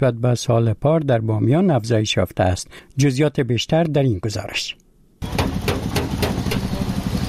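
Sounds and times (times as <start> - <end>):
speech: 0.0 - 5.4
hammer striking car metal in a repair shop: 5.2 - 6.8.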